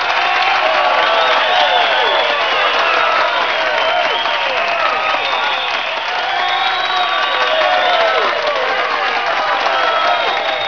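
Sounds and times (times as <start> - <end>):
crowd cheering: 0.0 - 10.6.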